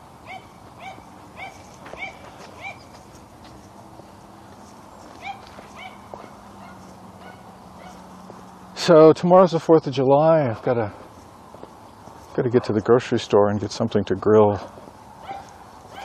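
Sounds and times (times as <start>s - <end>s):
steady hum of outdoor ambience: 0.0s - 16.0s
several dogs barking outdoors in the morning: 0.2s - 3.0s, 5.0s - 8.4s, 15.2s - 16.0s
speech: 8.8s - 11.0s, 12.4s - 14.8s.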